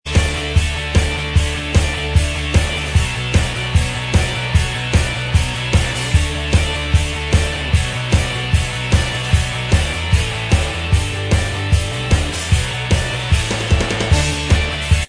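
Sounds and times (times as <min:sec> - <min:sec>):
instrumental track: 0:00.1 - 0:15.0.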